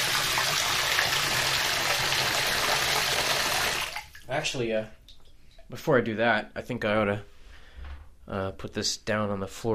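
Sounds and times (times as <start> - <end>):
tiny amount of water pouring into a container: 0.0 - 4.3
speech: 4.3 - 5.0, 5.7 - 7.3, 8.3 - 9.7.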